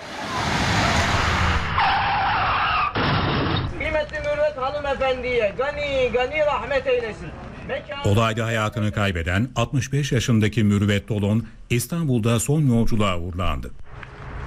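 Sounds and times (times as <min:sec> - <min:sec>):
bus and car skidding and crashing in a traffic accident: 0:00.0 - 0:03.9
speech: 0:04.9 - 0:13.8.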